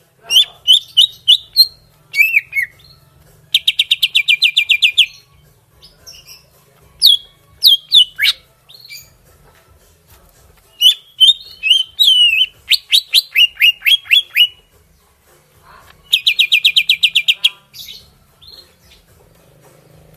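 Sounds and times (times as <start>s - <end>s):
greater green leafbird singing whistled notes in Kalimantan: 0.3s - 9.2s, 10.7s - 14.7s, 16.0s - 19.1s.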